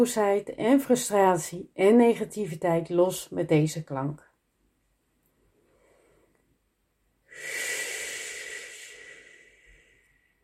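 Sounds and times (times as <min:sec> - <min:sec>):
speech: 0:00.0 - 0:04.3
forceful breathy exhale with faint voiced edge: 0:07.3 - 0:10.3.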